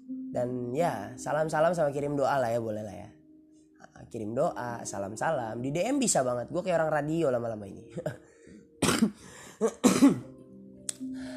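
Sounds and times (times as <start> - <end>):
speech: 0.3 - 3.2, 4.0 - 8.3, 9.0 - 10.3
person coughing and clearing throat: 7.9 - 8.2, 8.8 - 10.4.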